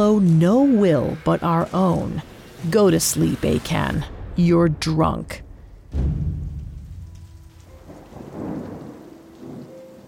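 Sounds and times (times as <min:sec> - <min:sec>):
steady rain falling with a hissing patter: 0:00.0 - 0:03.9, 0:05.9 - 0:10.0
speech: 0:00.0 - 0:06.3
deep loud rumble of thunder: 0:02.2 - 0:10.0.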